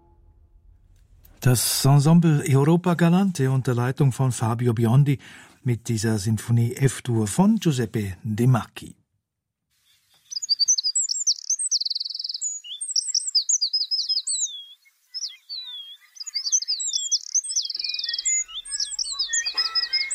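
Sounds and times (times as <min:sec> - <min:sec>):
speech: 0:01.4 - 0:09.0
musician wren singing: 0:09.9 - 0:20.1.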